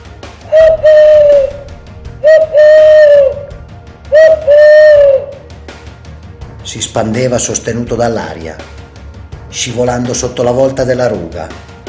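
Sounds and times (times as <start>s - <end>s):
angry owl whistling calls carrying through a village: 0.4s - 5.5s
speech: 6.7s - 8.8s, 9.6s - 11.7s.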